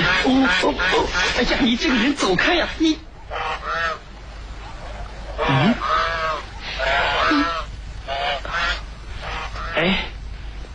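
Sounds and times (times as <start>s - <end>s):
white goose honking while being chased by a man: 0.0s - 2.0s, 2.6s - 9.9s
speech: 0.5s - 3.4s.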